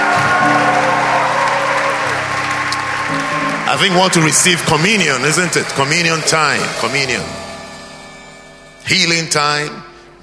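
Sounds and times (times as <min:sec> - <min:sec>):
audience clapping in a large room: 0:00.0 - 0:07.2
organ-like tone humming: 0:00.0 - 0:10.2
speech: 0:03.8 - 0:07.5, 0:08.9 - 0:10.2.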